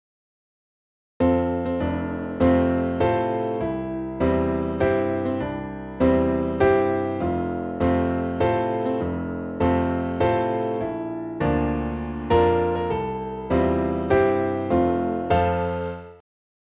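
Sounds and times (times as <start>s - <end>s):
piano melody in F major: 1.2s - 16.2s.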